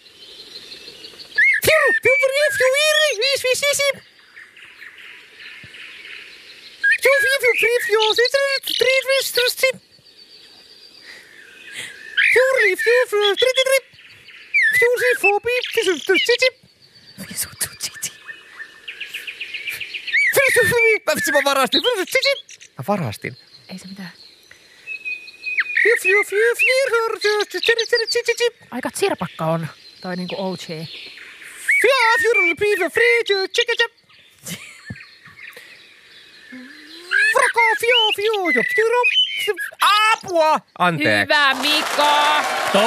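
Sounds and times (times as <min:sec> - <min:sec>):
man imitating a common blackbird's song at bird karaoke: 0:01.4 - 0:04.0, 0:06.8 - 0:09.9, 0:11.0 - 0:18.3, 0:19.0 - 0:24.2, 0:25.8 - 0:35.8, 0:36.4 - 0:41.4
speech: 0:03.5 - 0:04.1, 0:07.8 - 0:09.9, 0:12.6 - 0:13.9, 0:14.8 - 0:16.7, 0:20.5 - 0:24.2, 0:26.0 - 0:31.1, 0:31.8 - 0:34.6, 0:37.6 - 0:42.8.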